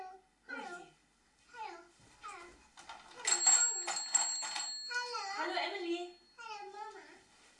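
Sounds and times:
young child babbling: 0:00.0 - 0:00.9, 0:01.5 - 0:02.6, 0:04.9 - 0:05.5, 0:06.4 - 0:07.2
bright rattling ring like a toy telephone bell: 0:02.9 - 0:06.3.

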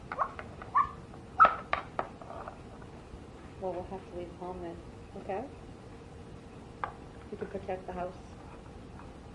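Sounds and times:
person imitating a dog with whiny yips: 0:00.2 - 0:01.6
speech: 0:03.6 - 0:05.7, 0:07.3 - 0:08.3.

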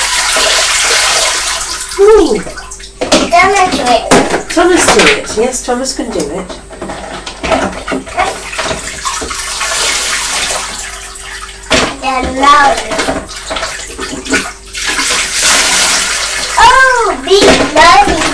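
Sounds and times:
water pouring from a bucket through a sieve: 0:00.0 - 0:05.2, 0:08.1 - 0:11.8, 0:12.5 - 0:18.3
speech: 0:02.0 - 0:02.6, 0:03.4 - 0:06.9, 0:12.2 - 0:13.2, 0:17.3 - 0:18.3.

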